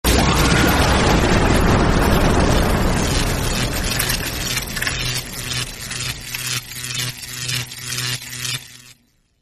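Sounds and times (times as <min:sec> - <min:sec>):
lightning impact: 0:00.1 - 0:06.2.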